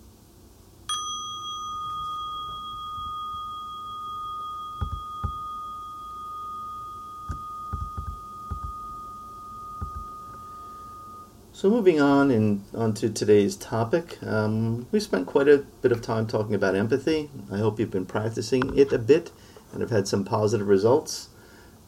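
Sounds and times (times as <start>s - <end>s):
meditation bell struck and ringing: 0.9s - 11.4s
soft low thumps in a quiet room: 4.8s - 5.5s, 7.3s - 8.9s, 9.8s - 10.5s
speech: 11.6s - 21.3s.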